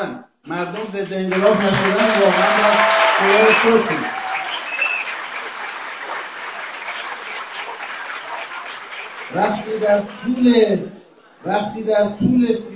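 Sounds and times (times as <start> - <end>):
speech: 0.0 - 4.2, 9.3 - 12.7
audience applause during a speech: 1.3 - 10.5.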